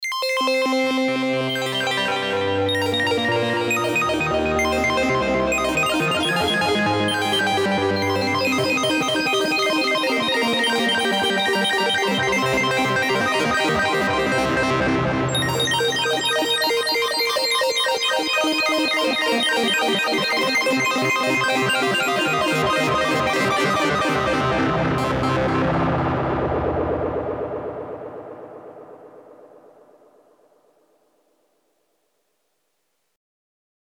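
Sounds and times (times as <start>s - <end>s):
Tone2 Icarus synthesizer: 0.0s - 30.4s.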